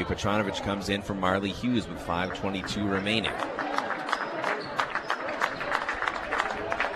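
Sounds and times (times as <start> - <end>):
murmur of voices: 0.0 - 6.9
speech: 0.1 - 3.8
basketball crowd applause in an indoor gym: 2.0 - 6.9.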